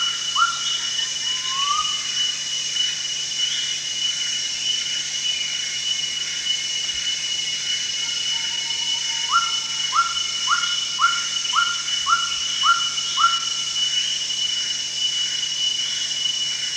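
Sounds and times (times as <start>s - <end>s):
greater racket-tailed drongo whistles at Danum: 0.0s - 2.4s, 8.0s - 16.4s
constant high insect drone: 0.0s - 16.7s.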